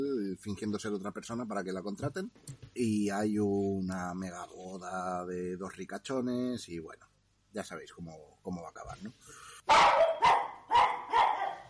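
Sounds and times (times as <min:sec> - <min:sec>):
speech: 0:00.0 - 0:10.0
dog barking: 0:09.7 - 0:11.6.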